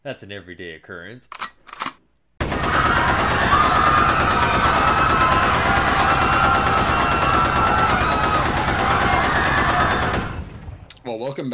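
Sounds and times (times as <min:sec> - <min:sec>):
speech: 0:00.0 - 0:01.5, 0:11.1 - 0:11.5
automatic gunfire sound effect: 0:02.4 - 0:10.6.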